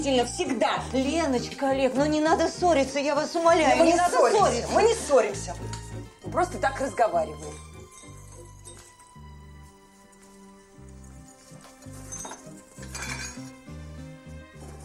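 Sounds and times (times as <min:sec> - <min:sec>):
speech: 0:00.0 - 0:07.6
steady low tonal backdrop: 0:00.0 - 0:14.8
pots and dishes clattering and clinking in a kitchen: 0:07.3 - 0:09.2, 0:11.8 - 0:13.7.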